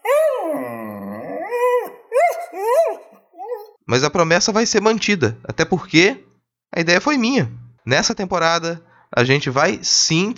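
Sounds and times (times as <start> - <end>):
dog howling: 0.0 - 3.8
speech: 3.9 - 10.3.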